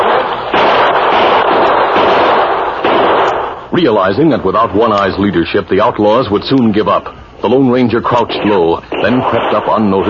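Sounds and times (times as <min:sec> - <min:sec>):
gunfire in a shootout with outlaws firing from back windows of a building: 0:00.0 - 0:03.6, 0:08.1 - 0:10.0
speech: 0:03.8 - 0:10.0.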